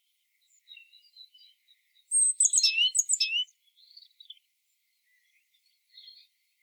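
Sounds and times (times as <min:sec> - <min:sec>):
great tit calls: 0:02.1 - 0:03.5.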